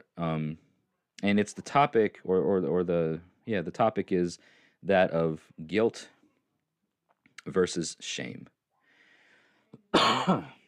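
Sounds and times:
speech: 0.2 - 6.2, 7.4 - 8.6, 9.9 - 10.6
harsh raspy hacking cough: 9.9 - 10.6.

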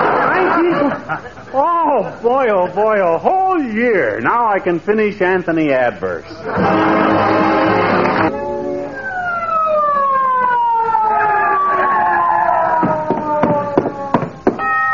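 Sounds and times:
laughter: 0.0 - 2.8
speech: 1.1 - 7.4
loud ambulance siren wailing: 7.5 - 14.9
sharp knocks: 12.8 - 14.6.

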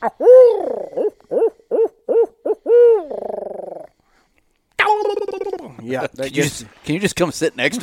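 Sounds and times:
owl locator call with barred-owl-style hoots and gargling trill: 0.0 - 3.9
speech: 5.9 - 7.8
laughter: 7.7 - 7.8.

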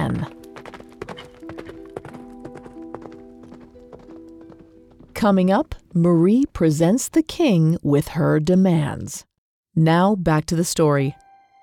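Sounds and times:
horse hooves clip-clopping: 0.0 - 6.3
speech: 5.2 - 11.2.

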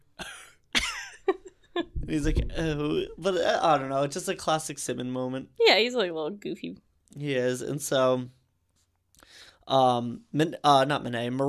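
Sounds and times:
person coughing as a reaction to a joke: 0.2 - 0.6
speech: 1.8 - 8.4, 9.3 - 11.4.

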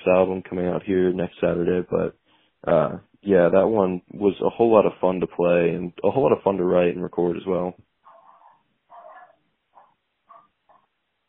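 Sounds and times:
speech: 0.0 - 7.9
dog barking: 8.0 - 11.0.

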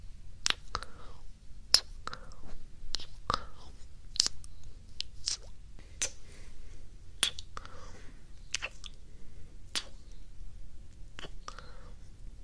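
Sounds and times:
quiet low hum: 0.0 - 12.4
wet mouth sounds and kissy smacks: 0.4 - 0.9, 1.7 - 3.5, 4.1 - 6.2, 7.2 - 7.7, 8.4 - 9.0, 9.7 - 10.0, 11.2 - 11.6.

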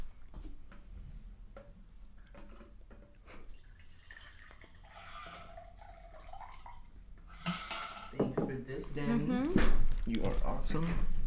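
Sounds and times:
liquid being poured into a cup: 2.2 - 7.0
speech: 8.5 - 11.1.

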